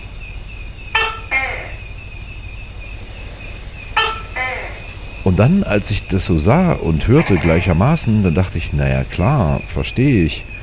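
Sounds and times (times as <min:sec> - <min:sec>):
buzzing insects: 0:00.0 - 0:10.6
Tokay gecko two-syllable calls: 0:00.9 - 0:02.2, 0:03.4 - 0:05.7, 0:06.6 - 0:08.0
speech: 0:05.2 - 0:10.5.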